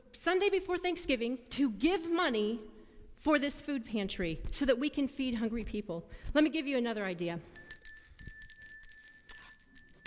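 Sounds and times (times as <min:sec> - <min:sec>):
speech: 0:00.2 - 0:07.6
hand bell ringing: 0:07.6 - 0:10.0.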